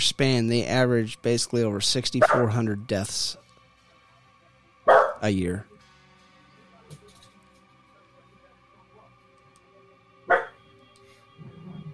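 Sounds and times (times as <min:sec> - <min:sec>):
speech: 0:00.0 - 0:03.4, 0:05.2 - 0:05.7
low electrical hum: 0:00.0 - 0:11.9
low murmur: 0:00.0 - 0:11.9
dog barking: 0:02.2 - 0:02.5, 0:04.9 - 0:05.2, 0:10.3 - 0:10.6.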